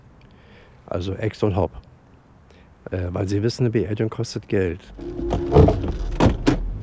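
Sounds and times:
speech: 0.9s - 1.9s, 2.9s - 5.9s
rustling movement of someone climbing into a car: 4.9s - 6.4s
car door thumps: 5.0s - 6.7s.

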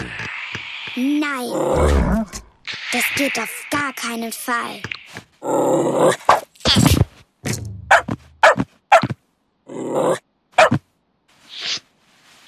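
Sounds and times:
speech: 1.0s - 2.3s, 2.9s - 6.3s
dog low rumbling growls: 1.4s - 2.6s, 5.4s - 6.4s, 9.7s - 10.2s
dog barking: 7.9s - 9.1s, 10.5s - 10.8s.

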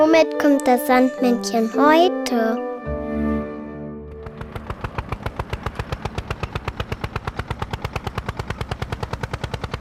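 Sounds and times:
speech: 0.1s - 2.6s
tractor engine chugging: 4.2s - 9.7s.

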